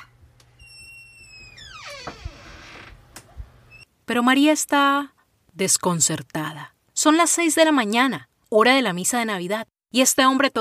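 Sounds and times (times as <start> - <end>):
door creaking open with squealing hinges: 0.5 - 3.9
speech: 4.1 - 10.5.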